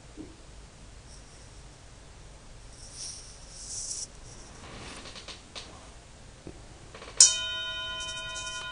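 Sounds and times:
quiet rustling and shuffling: 1.0 - 1.8, 2.5 - 7.3, 7.9 - 8.7
bell accidentally struck and ringing: 7.1 - 8.7.

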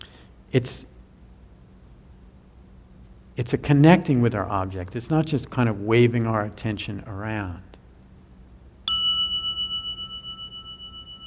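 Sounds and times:
speech: 0.5 - 0.9, 3.4 - 7.7
single bell struck and ringing: 8.9 - 11.2.

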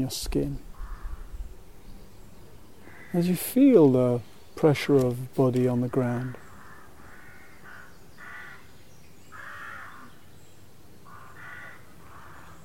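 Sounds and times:
speech: 0.0 - 0.7, 3.1 - 6.4
steady hiss: 0.0 - 12.6
crows cawing outdoors: 0.7 - 1.4, 2.8 - 3.2, 5.9 - 8.7, 9.3 - 10.1, 11.0 - 12.6.

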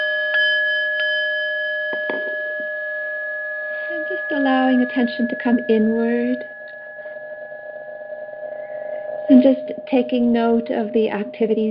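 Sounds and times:
meditation bell ringing to begin a guided meditation: 0.0 - 11.4
soft knocks: 1.9 - 2.4
speech: 4.4 - 6.5, 9.4 - 11.6.

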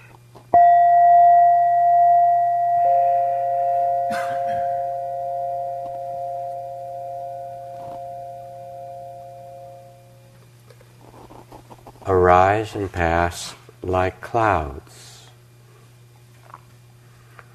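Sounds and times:
low hum: 0.0 - 17.5
meditation bell ringing: 0.6 - 10.2
speech: 12.3 - 15.1.

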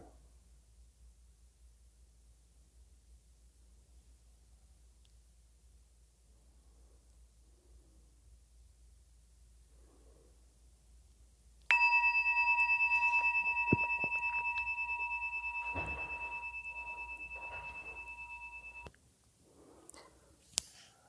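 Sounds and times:
meditation bell ringing: 11.7 - 18.9.

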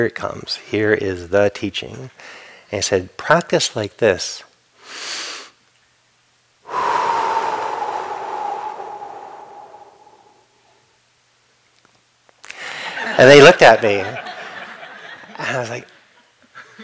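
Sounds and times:
speech: 0.0 - 5.2, 13.2 - 14.2, 15.4 - 15.9
slow deliberate breathing demonstration: 6.7 - 10.8.

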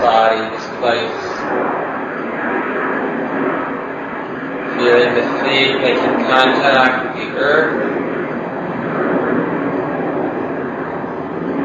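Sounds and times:
speech: 0.0 - 1.7, 5.5 - 7.9
jet aircraft passing overhead: 0.0 - 11.6.

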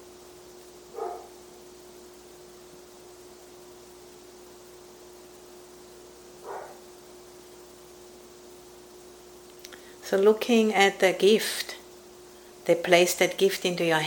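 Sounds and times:
steady hum and hiss: 0.0 - 14.0
faint dog barks: 0.9 - 1.5, 6.4 - 6.9
speech: 10.1 - 11.8, 12.7 - 14.0.

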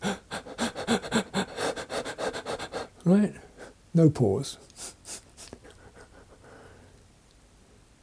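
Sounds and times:
person imitating rapid panicked breathing: 0.0 - 3.8, 4.7 - 7.0
speech: 3.1 - 4.7.

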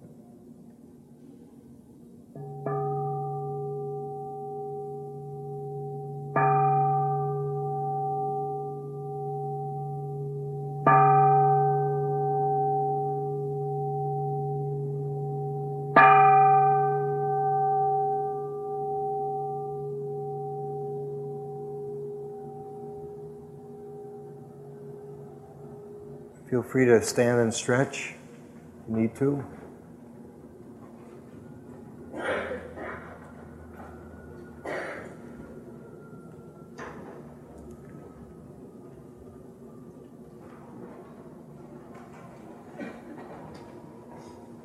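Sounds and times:
resonant bell struck with long sustained hum: 2.3 - 28.1, 32.0 - 38.8
speech: 26.5 - 28.2, 29.0 - 29.6.

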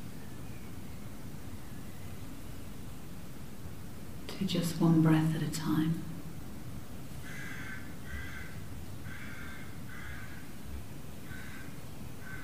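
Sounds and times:
speech: 4.4 - 6.1
rooks cawing: 7.2 - 10.6, 11.2 - 12.4.

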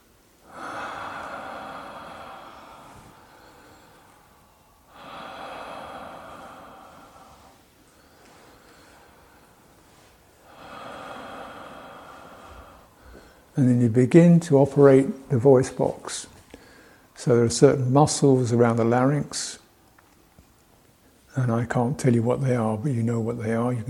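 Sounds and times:
open-mouthed breathing with no voicing: 0.4 - 13.6, 16.2 - 17.2
speech: 13.6 - 16.4, 17.2 - 19.6, 21.4 - 23.8.

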